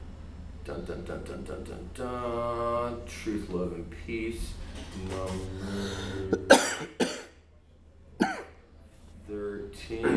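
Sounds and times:
speech: 0.7s - 6.7s
sharp coughs: 6.3s - 7.4s, 8.2s - 8.6s.

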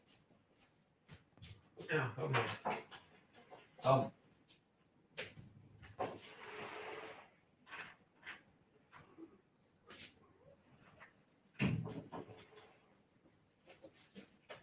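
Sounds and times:
speech: 1.9s - 2.8s, 3.8s - 4.2s
house door being unlatched and opened: 11.5s - 12.7s.

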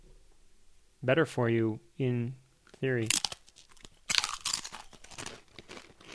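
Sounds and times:
speech: 1.0s - 3.2s
nacho cheese tortilla chip being bitten and chewed: 2.7s - 6.1s.

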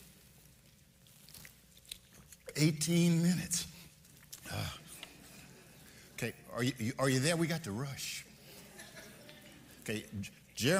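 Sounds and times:
person sipping water: 0.1s - 2.6s, 3.7s - 6.2s
wet mouth clicks: 1.2s - 2.5s, 4.2s - 5.1s
speech: 2.6s - 3.7s, 6.2s - 8.2s, 9.8s - 10.7s.

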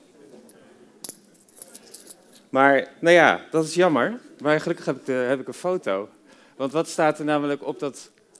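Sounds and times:
assortment of coins clinking and jingling while handled: 1.0s - 2.5s
speech: 2.5s - 8.2s.

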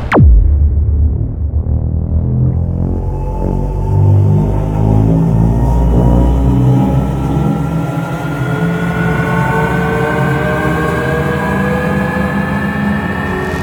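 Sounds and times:
sharp downward sweep: 0.1s - 7.3s
darker throbbing low pulse: 0.1s - 7.8s
thin rising whine: 0.1s - 10.5s
rumbling cinematic drone: 0.1s - 13.6s.

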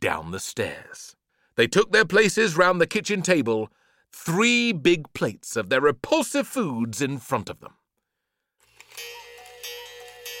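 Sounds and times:
speech: 0.0s - 7.8s
hallway clock chiming midnight: 8.9s - 10.3s.

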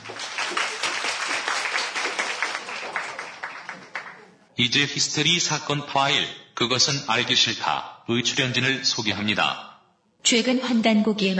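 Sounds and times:
audience applause: 0.0s - 4.5s
speech: 4.6s - 11.3s.

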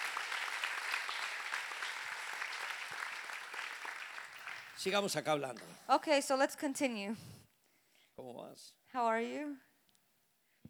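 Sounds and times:
crowd clapping: 0.0s - 5.0s
speech: 4.8s - 7.4s, 8.5s - 9.7s.

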